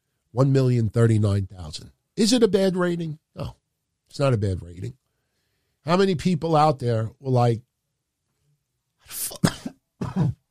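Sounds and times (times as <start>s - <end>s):
speech: 0.3s - 5.0s, 5.8s - 7.7s, 9.1s - 9.5s
person with COVID coughing: 9.1s - 10.4s.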